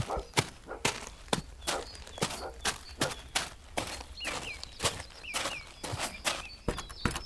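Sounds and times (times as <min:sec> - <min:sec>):
horse hooves galloping: 0:00.0 - 0:07.2.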